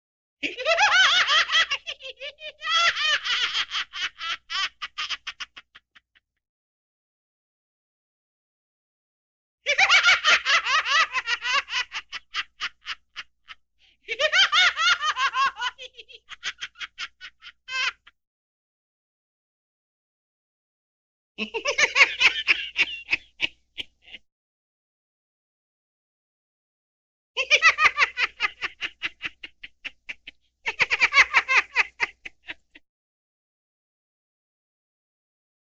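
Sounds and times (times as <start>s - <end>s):
person laughing crazily: 0.4s - 6.2s, 9.7s - 18.1s, 21.4s - 24.2s, 27.4s - 32.8s.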